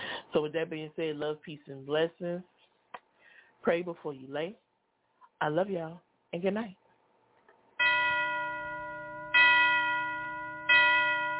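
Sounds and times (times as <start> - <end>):
speech: 0.4 - 2.5, 3.6 - 4.6, 5.4 - 6.8
church bell tolling: 7.8 - 11.3.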